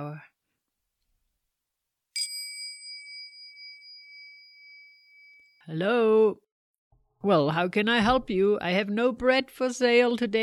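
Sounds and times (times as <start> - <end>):
doorbell single bright metallic ding: 2.2 - 5.6
speech: 5.7 - 6.4, 7.2 - 10.4.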